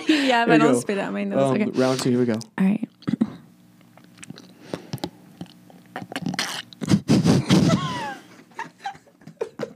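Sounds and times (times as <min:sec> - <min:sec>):
speech: 0:00.3 - 0:03.2
ASMR mouth sounds of someone drinking a coffee drink: 0:04.0 - 0:07.7.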